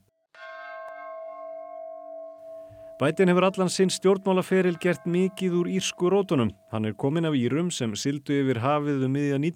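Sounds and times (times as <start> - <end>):
large peace bell ringing: 0.4 - 8.0
speech: 3.0 - 9.5.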